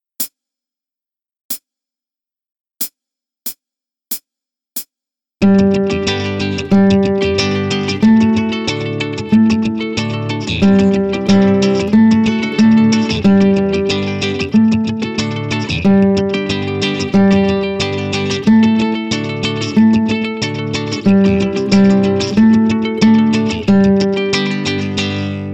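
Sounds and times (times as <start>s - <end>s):
guitar playing note A: 5.4s - 25.5s.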